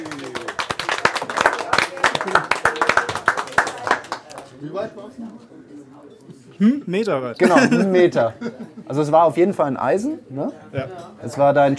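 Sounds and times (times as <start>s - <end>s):
small group clapping for a golfer's longest-drive win: 0.0s - 4.6s
speech: 4.6s - 11.7s
laughter: 7.4s - 8.9s.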